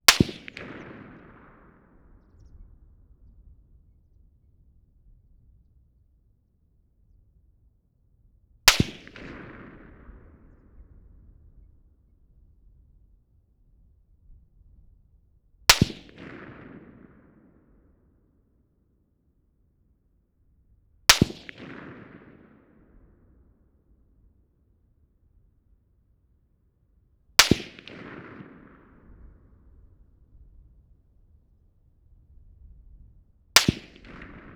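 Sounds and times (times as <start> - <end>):
Mosin-Nagant rifle shots 50m distant: 0.1 - 2.6, 8.7 - 10.9, 15.7 - 17.6, 21.1 - 23.4, 27.4 - 30.0, 33.6 - 34.5.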